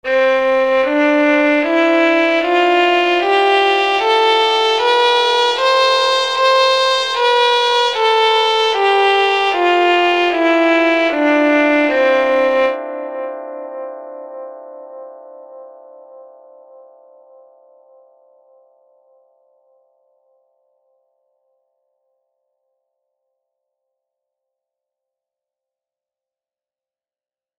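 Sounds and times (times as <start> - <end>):
kabak kemane playing: 0.1 - 12.8.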